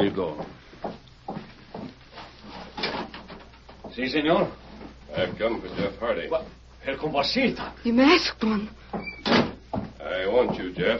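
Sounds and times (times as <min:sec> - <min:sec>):
speech: 0:00.0 - 0:00.6, 0:04.0 - 0:09.1, 0:10.2 - 0:10.9
wooden door pulled open with scrapes and creaks: 0:08.9 - 0:09.6.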